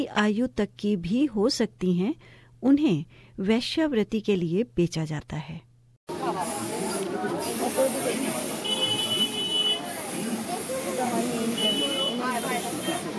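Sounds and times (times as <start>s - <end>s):
speech: 0.0s - 5.7s
spray paint can hissing on roadside walls in Kolkata: 6.1s - 13.1s
street noise in Kolkata: 6.1s - 13.1s.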